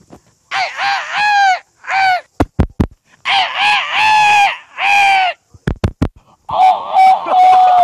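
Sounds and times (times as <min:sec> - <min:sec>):
man imitating a bantam rooster crowing: 0:00.5 - 0:02.3, 0:03.2 - 0:05.4, 0:06.5 - 0:07.8.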